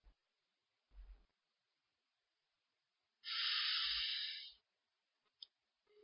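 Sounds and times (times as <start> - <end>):
slow breath through the nose during a guided breathing exercise: 3.2 - 4.6.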